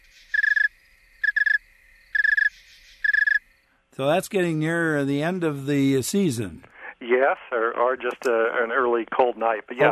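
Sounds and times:
cold male snowy tree cricket Oecanthus fultoni slow pulsed chirps: 0:00.0 - 0:04.9
speech: 0:04.0 - 0:09.9.

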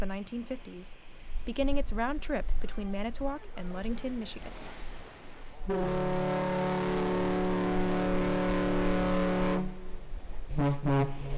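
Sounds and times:
speech: 0:00.0 - 0:04.9, 0:05.6 - 0:07.0, 0:10.6 - 0:11.2
car ferry deep horn blasting as a salute: 0:05.6 - 0:11.3.

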